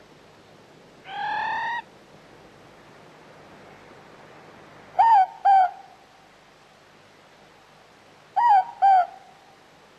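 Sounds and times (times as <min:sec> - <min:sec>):
Morepork hooting: 0:01.0 - 0:01.9, 0:05.0 - 0:05.9, 0:08.4 - 0:09.3.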